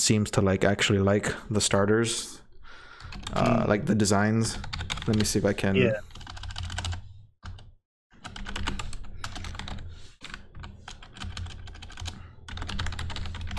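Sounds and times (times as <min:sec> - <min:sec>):
speech: 0:00.0 - 0:02.4, 0:03.1 - 0:06.1
computer keyboard typing: 0:03.0 - 0:03.6, 0:04.6 - 0:05.4, 0:06.1 - 0:13.5.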